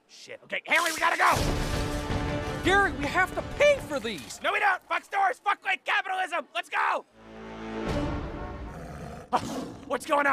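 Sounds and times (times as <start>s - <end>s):
speech: 0.2s - 1.9s, 2.6s - 7.3s, 9.3s - 10.3s
tiger roaring: 8.6s - 10.0s.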